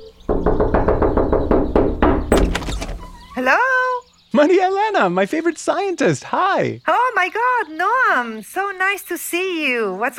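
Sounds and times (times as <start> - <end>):
firm knocking on a wooden door: 0.2 - 3.4
speech: 3.4 - 3.8, 4.4 - 10.1.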